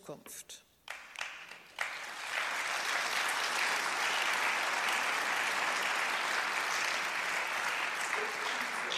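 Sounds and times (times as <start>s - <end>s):
speech: 0.1s - 0.6s
audience applause: 0.8s - 8.9s.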